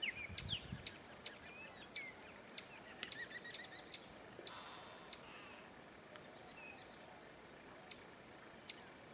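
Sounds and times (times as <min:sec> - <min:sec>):
faint background hiss: 0:00.0 - 0:09.1
Black-tufted marmoset calls: 0:00.2 - 0:05.2.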